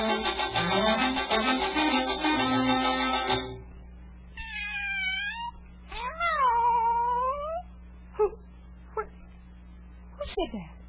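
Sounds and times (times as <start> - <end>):
low steady hum: 0.0 - 10.8
cat in a tree meowing: 4.4 - 7.7.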